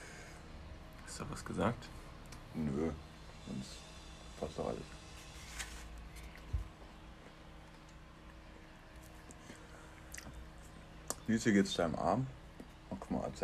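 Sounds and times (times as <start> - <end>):
speech: 1.2 - 5.0, 11.3 - 12.4, 13.1 - 13.4
person chewing an apple: 7.2 - 11.2.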